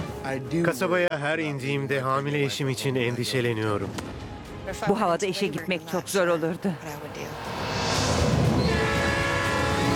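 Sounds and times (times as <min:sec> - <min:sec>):
speech: 0:00.2 - 0:07.5
Alaska Railroad train rumbling along the tracks: 0:06.3 - 0:09.9
sustained horn-like tone: 0:07.5 - 0:09.9.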